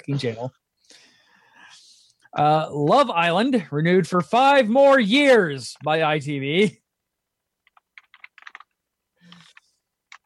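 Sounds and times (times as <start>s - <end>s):
speech: 0.0s - 1.1s, 2.3s - 6.8s
typing on a laptop keyboard: 7.6s - 10.2s.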